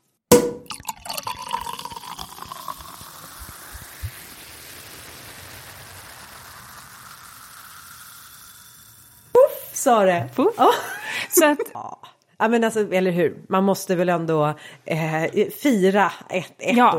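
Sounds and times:
champagne bottle opened for a celebration: 0:00.3 - 0:03.0
champagne fizzing as it is poured: 0:00.3 - 0:11.5
speech: 0:09.8 - 0:16.9
laughter: 0:10.6 - 0:11.7.

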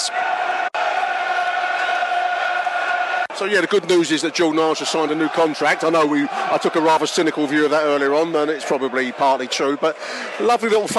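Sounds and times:
large football stadium crowd roaring and cheering: 0:00.0 - 0:10.9
speech: 0:03.4 - 0:10.9.

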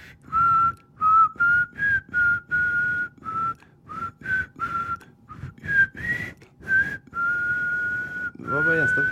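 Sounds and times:
breaths between whistled phrases: 0:00.0 - 0:00.4, 0:03.5 - 0:04.0, 0:04.6 - 0:08.4
person whistling two tones at once: 0:00.3 - 0:09.1.

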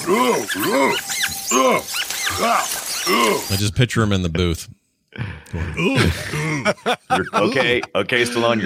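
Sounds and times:
voice imitating an actor's grunting noises: 0:00.0 - 0:03.5, 0:05.2 - 0:06.7
speech: 0:00.1 - 0:08.6
laughter: 0:05.3 - 0:08.6.

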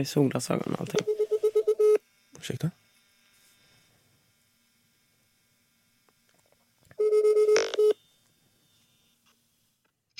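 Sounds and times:
speech: 0:00.0 - 0:01.2, 0:02.4 - 0:02.8
telephone ringing tone before call answered: 0:01.0 - 0:02.0, 0:07.0 - 0:08.1.

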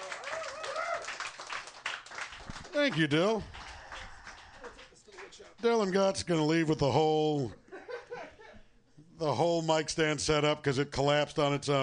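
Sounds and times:
voices whooping: 0:00.0 - 0:01.2
crowd clapping and cheering: 0:00.0 - 0:05.4
speech: 0:02.8 - 0:03.6, 0:05.6 - 0:07.6, 0:09.2 - 0:11.8.

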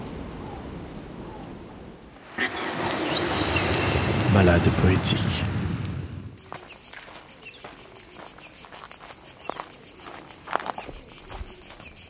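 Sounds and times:
rush of noise: 0:02.2 - 0:06.4
cicadas chirping in Provence: 0:02.3 - 0:04.3, 0:06.2 - 0:12.0
speech: 0:04.3 - 0:05.5.

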